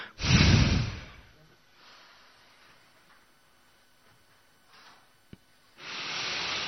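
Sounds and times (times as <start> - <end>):
forceful exhales from a breathing exercise: 0.0 - 2.2, 5.8 - 6.6.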